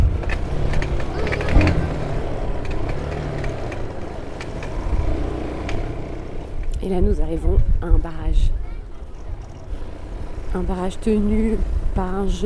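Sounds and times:
clicks and rattles over a bumpy road: 0.0s - 4.8s
motorcycle engine droning while riding on a rough road: 0.0s - 12.4s
speech: 6.9s - 8.6s, 10.5s - 12.4s.

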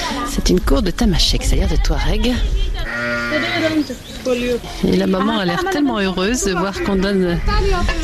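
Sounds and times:
faint outdoor noise: 0.0s - 8.0s
speech: 0.5s - 8.0s
goat bleating in a courtyard: 2.8s - 3.8s.

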